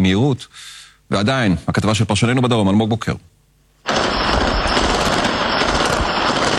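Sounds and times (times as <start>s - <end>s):
speech: 0.0s - 3.3s
continuous automatic gunfire in a southern town at night: 3.9s - 6.5s.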